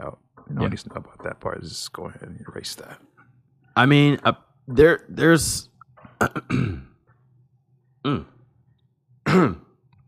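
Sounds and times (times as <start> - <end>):
speech: 0.0 - 3.1, 3.8 - 6.9, 8.0 - 8.3
throat clearing: 6.0 - 7.1, 8.1 - 8.4, 9.2 - 9.8.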